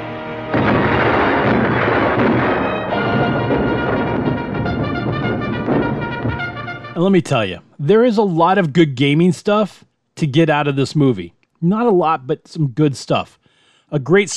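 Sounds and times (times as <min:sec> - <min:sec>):
guns firing on a target in a film battle scene: 0:00.5 - 0:07.0
speech: 0:07.0 - 0:14.3.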